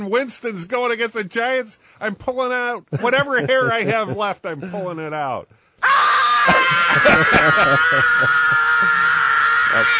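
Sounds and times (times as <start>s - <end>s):
speech: 0.0s - 9.1s, 9.7s - 9.9s
laughter: 2.9s - 5.0s, 6.5s - 9.9s
person screaming in frustration: 5.8s - 9.9s.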